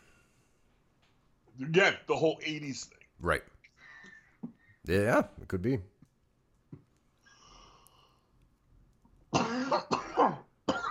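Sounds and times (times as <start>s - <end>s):
speech: 1.6s - 3.6s, 4.8s - 5.9s
raspy coughing: 9.3s - 10.9s.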